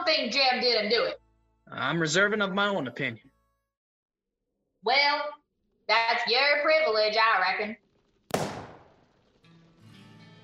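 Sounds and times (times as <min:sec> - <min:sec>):
speech: 0:00.1 - 0:03.3, 0:04.8 - 0:07.8
gunshot outside an office: 0:08.3 - 0:09.1.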